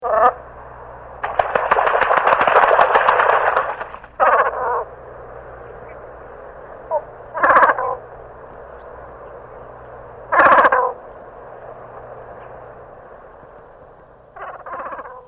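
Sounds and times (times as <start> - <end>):
European shag calling: 0.0 - 15.2.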